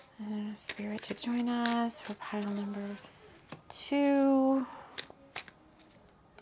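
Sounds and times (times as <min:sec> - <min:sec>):
speech: 0:00.2 - 0:04.8
tarot cards being shuffled: 0:00.6 - 0:04.1, 0:04.9 - 0:06.4.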